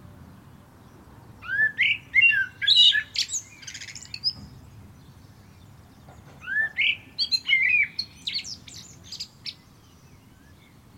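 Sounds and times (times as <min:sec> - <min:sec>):
common blackbird Turdus merula singing: 0:00.4 - 0:10.9.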